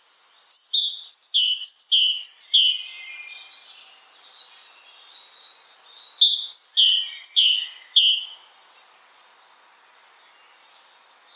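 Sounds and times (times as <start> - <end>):
faint hiss: 0.0 - 11.3
great tit song: 0.4 - 3.0, 6.0 - 8.3.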